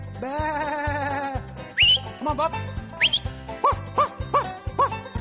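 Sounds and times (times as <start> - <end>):
speech: 0.2 - 0.8, 2.2 - 2.8
short rising whistle: 1.8 - 2.1, 3.0 - 3.3
kelpie sheepdog barking: 3.6 - 5.0.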